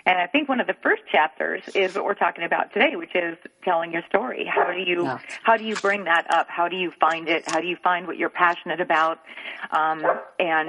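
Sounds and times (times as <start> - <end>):
speech: 0.1 - 10.6
dog barking: 10.0 - 10.6.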